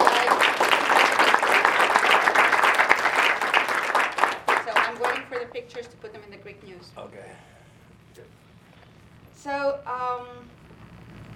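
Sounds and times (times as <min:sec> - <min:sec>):
audience applause at a school event honouring students: 0:00.0 - 0:05.5.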